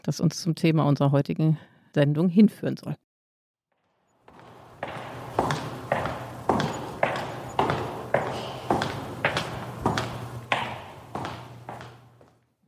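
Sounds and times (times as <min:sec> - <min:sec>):
speech: 0:00.1 - 0:03.0
leather-soled footsteps echoing on a resonant floor: 0:03.8 - 0:12.5.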